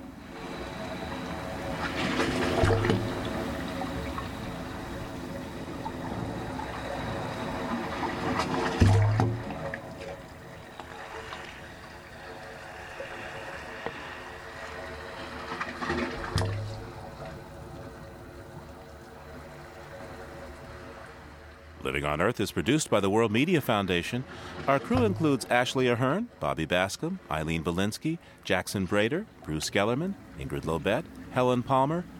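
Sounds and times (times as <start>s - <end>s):
seawater sloshing and gurgling through wave organ pipes: 0.0s - 21.2s, 24.2s - 26.3s
waves rolling ashore in San Francisco Bay: 0.2s - 21.4s
speech: 21.9s - 32.1s.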